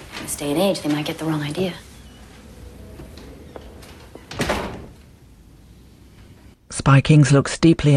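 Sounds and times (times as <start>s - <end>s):
door swinging open onto a corridor with rushing rattle: 0.0s - 6.6s
speech: 0.3s - 1.9s, 6.9s - 7.9s
door clicks and knocks: 2.7s - 5.4s.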